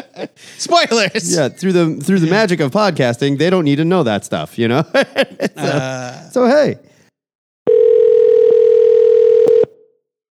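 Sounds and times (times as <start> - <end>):
laughter: 0.0 - 2.6, 4.7 - 6.5
speech: 0.2 - 6.9
telephone dial tone on an outgoing call: 7.7 - 9.8.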